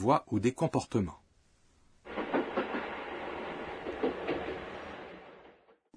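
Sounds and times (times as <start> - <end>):
speech: 0.0 - 1.2
moving train rumbling past: 2.1 - 5.9
train wheels clacking over rail joints: 2.1 - 5.9.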